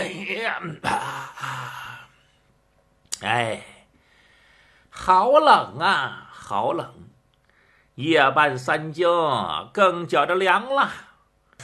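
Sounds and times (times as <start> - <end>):
speech: 0.4 - 1.8, 3.2 - 3.7, 5.0 - 7.1, 8.0 - 11.6
voice imitating a person yawning and stretching: 0.6 - 2.2.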